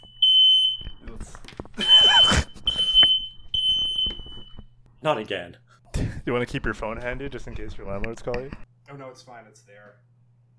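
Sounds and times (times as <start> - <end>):
smoke alarm beeping: 0.0 - 1.0, 1.8 - 4.8
speech: 5.0 - 5.6, 6.3 - 10.1.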